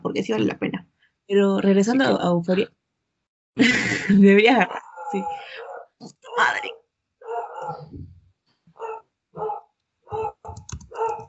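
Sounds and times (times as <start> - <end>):
speech: 0.2 - 0.7, 1.3 - 2.8, 3.6 - 6.8
laughter: 3.6 - 5.6
dog barking: 4.7 - 7.9, 8.8 - 11.2.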